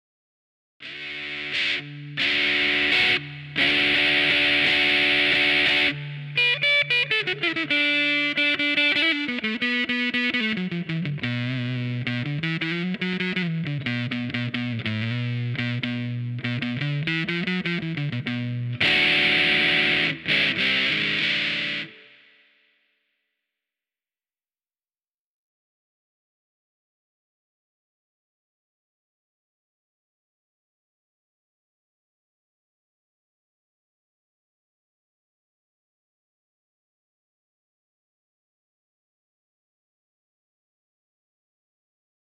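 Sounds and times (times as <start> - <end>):
scooped blues: 0.8 - 22.2.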